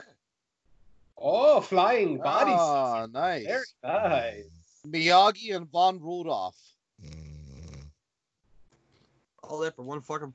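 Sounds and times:
speech: 0:01.2 - 0:07.2, 0:09.4 - 0:10.3
person snoring: 0:07.0 - 0:07.9.

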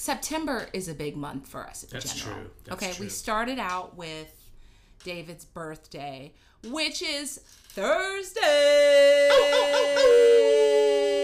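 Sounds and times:
speech: 0:00.0 - 0:04.4, 0:05.0 - 0:10.4
person imitating a coyote howl in falsetto: 0:08.7 - 0:11.2.

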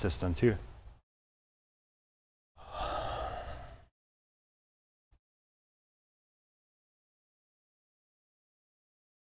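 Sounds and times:
speech: 0:00.0 - 0:00.7
person yawning with wide jaw: 0:02.6 - 0:03.9.

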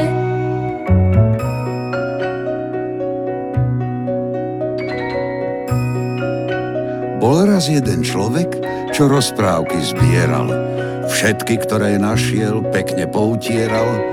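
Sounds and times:
musical backdrop: 0:00.0 - 0:14.1
small bell ringing: 0:01.4 - 0:02.6, 0:04.8 - 0:07.1
speech: 0:07.6 - 0:14.1.

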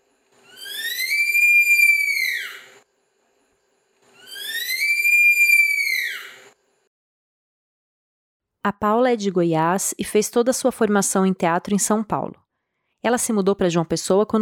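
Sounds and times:
sloth's thin high mating whistle: 0:00.4 - 0:02.8, 0:04.2 - 0:06.6
speech: 0:08.6 - 0:12.4, 0:13.0 - 0:14.4.

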